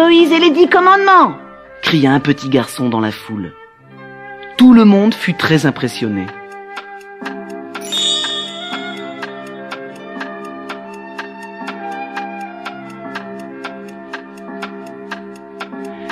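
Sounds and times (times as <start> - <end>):
speech: 0.1 - 3.6, 4.6 - 6.4
large mechanical clock ticking: 5.4 - 16.1
large mechanical clock striking ten o'clock: 7.8 - 11.3.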